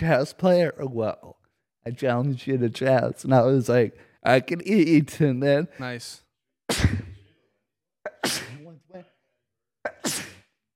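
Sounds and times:
speech: 0.0 - 7.0
person sneezing loudly: 6.7 - 7.2, 8.1 - 8.7, 9.9 - 10.6.

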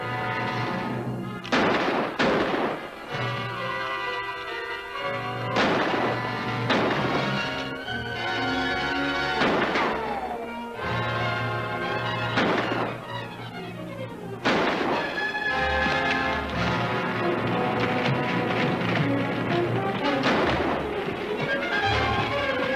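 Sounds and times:
sustained tonal backdrop: 0.0 - 22.7
gunshots shooting a hole in an object: 0.3 - 3.7, 5.4 - 10.4, 11.8 - 13.3, 14.4 - 22.7.

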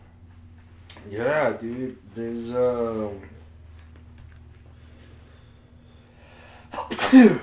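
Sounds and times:
faint low hum: 0.0 - 7.4
speech: 1.0 - 3.4, 7.1 - 7.4
loud sneeze: 6.8 - 7.4.

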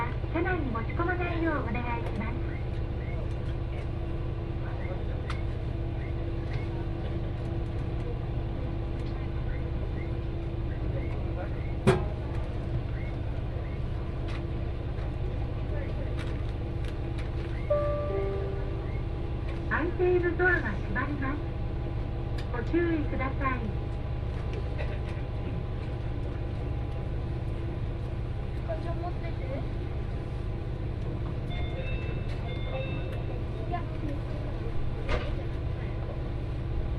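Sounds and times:
local train engine hum on the Etsumi North Line: 0.0 - 36.9
steady low train rumble: 17.4 - 20.8.

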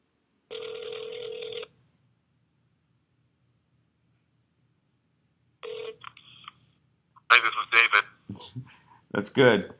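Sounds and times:
phone ringback tone on an outgoing call: 0.5 - 1.7, 5.6 - 6.0
voice answering phone: 7.3 - 8.2
speech: 8.4 - 9.7.

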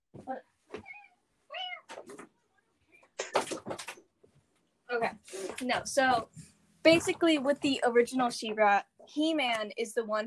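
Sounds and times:
speech: 0.3 - 0.9, 5.0 - 10.2
cat meowing: 0.8 - 2.0
cat scratching and rattling a door: 3.3 - 4.0.

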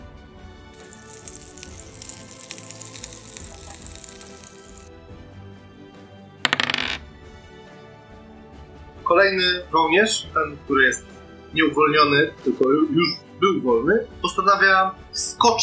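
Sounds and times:
wick set alight by sparks burning and sizzling: 0.7 - 4.9
speech: 9.1 - 15.6.

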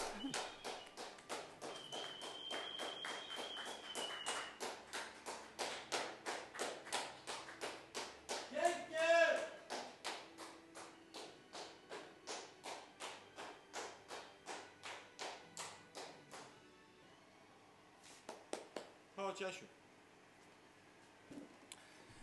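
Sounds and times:
person clapping hands: 0.0 - 16.5, 18.2 - 19.0.

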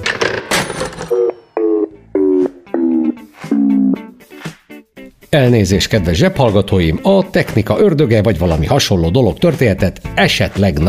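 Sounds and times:
smartphone on its charger beeping: 1.1 - 4.0
speech: 5.3 - 10.8.

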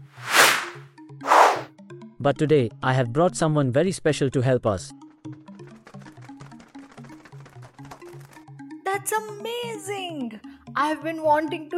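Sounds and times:
arrow shot whoosh: 0.0 - 1.7
speech: 2.2 - 5.0, 9.4 - 11.7.

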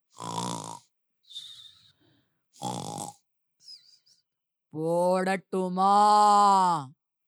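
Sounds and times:
voice imitating a man snoring in bed: 0.2 - 1.6, 2.6 - 3.2
speech: 4.7 - 7.0.

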